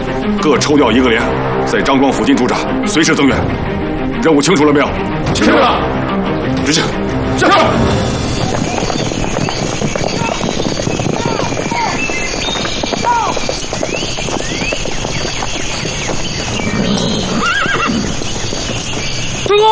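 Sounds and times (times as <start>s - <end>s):
speech: 0.3s - 8.1s
hooves of ridden horses clip-clopping: 7.8s - 19.7s
horses neighing: 8.1s - 15.1s, 16.2s - 18.5s.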